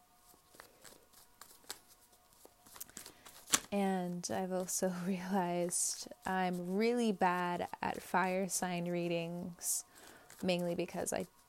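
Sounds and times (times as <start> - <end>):
tarot cards being shuffled: 0.2 - 4.8
speech: 3.7 - 11.4.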